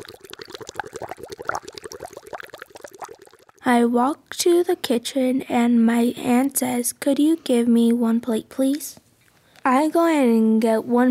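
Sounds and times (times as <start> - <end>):
water boiling in a pot: 0.0 - 3.8
speech: 3.7 - 9.0, 9.6 - 11.0.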